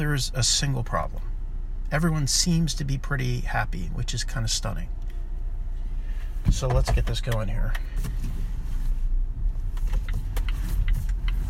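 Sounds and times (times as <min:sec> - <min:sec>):
speech: 0:00.0 - 0:01.3, 0:01.9 - 0:05.1, 0:06.4 - 0:08.6
low steady rumble inside a car cabin: 0:00.0 - 0:11.4
short clicks of car controls being operated: 0:06.4 - 0:08.4, 0:09.7 - 0:11.4.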